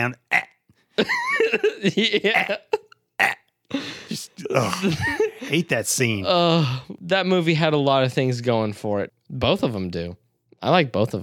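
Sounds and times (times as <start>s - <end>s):
speech: 0.0s - 0.2s, 1.0s - 3.9s, 4.5s - 11.2s
voice imitating a drawn-out croaky belch: 0.0s - 0.6s, 1.6s - 3.5s
laughter: 1.0s - 2.9s, 3.8s - 5.8s.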